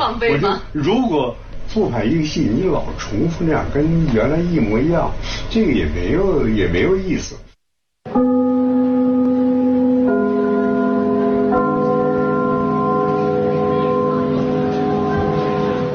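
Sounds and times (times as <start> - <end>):
speech: 0.0 - 7.4
theatre opening bell chime: 8.1 - 15.9.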